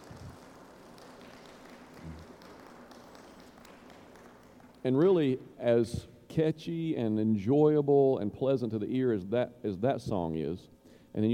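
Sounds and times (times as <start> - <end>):
crowd applauding: 0.0 - 5.1
speech: 4.8 - 11.3.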